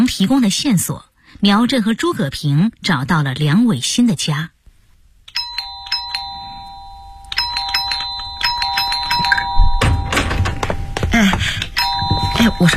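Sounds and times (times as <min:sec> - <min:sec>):
speech: 0:00.1 - 0:04.6, 0:12.6 - 0:12.7
electronic doorbell rung at the door of a family home: 0:05.3 - 0:12.7
heavy thuds and clatter: 0:09.2 - 0:12.6.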